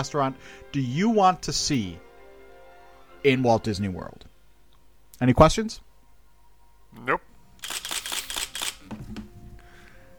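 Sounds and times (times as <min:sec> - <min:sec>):
speech: 0:00.0 - 0:02.0, 0:03.2 - 0:04.3, 0:05.2 - 0:05.9, 0:06.9 - 0:07.3
faint noise: 0:00.0 - 0:10.1
camera shutter clicking in a rapid burst: 0:07.6 - 0:08.9.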